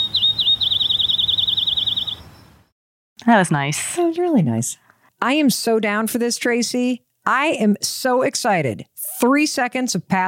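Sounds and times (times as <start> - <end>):
bird singing rapid high chirps in a trill: 0.0 - 2.6
speech: 3.2 - 10.2.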